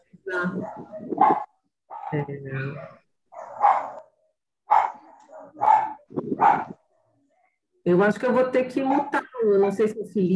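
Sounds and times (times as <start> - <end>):
speech: 0.3 - 1.4, 2.1 - 3.0, 7.9 - 10.3
dog barking: 0.5 - 7.2.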